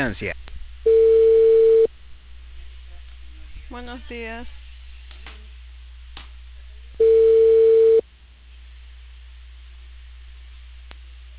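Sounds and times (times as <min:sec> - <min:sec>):
speech: 0:00.0 - 0:00.5, 0:03.7 - 0:04.6
steady telephone tone: 0:00.9 - 0:01.9, 0:07.0 - 0:08.0.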